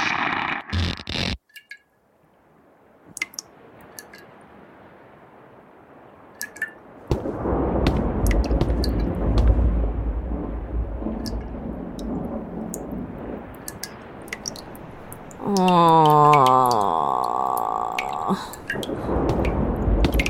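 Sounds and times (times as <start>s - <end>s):
sharp drips and clicks: 0.7s - 5.1s, 5.9s - 20.2s
rumbling thunder of an approaching storm: 7.1s - 15.4s, 18.7s - 20.2s.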